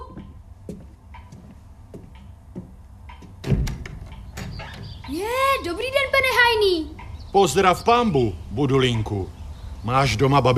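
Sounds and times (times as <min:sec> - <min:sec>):
knocking on a wooden door: 0:01.9 - 0:05.0
speech: 0:05.1 - 0:10.5.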